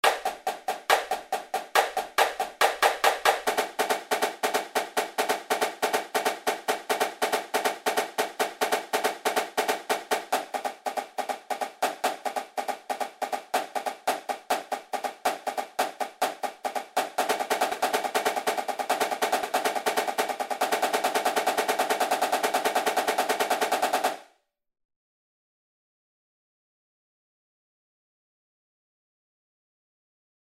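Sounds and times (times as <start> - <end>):
snare drum double beat at 140 bpm: 0.0 - 24.2.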